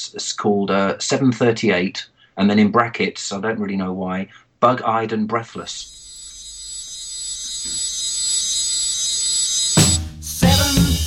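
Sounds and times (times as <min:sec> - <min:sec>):
speech: 0:00.1 - 0:06.0
alarm clock ringing with shrill electronic tone: 0:05.7 - 0:10.7
loud music: 0:09.8 - 0:11.0.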